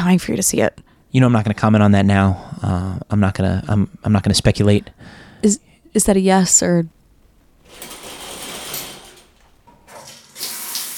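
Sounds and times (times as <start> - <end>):
speech: 0.0 - 7.0
shower water running: 7.1 - 10.9.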